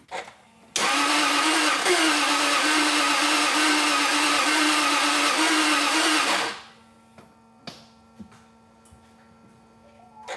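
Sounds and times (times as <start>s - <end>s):
XK8 car engine failing to start: 0.8s - 5.4s.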